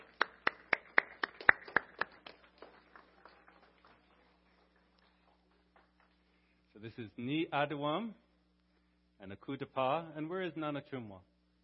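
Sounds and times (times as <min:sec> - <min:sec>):
audience applause for volunteers: 0:00.0 - 0:06.4
speech: 0:06.8 - 0:08.2, 0:09.2 - 0:11.3.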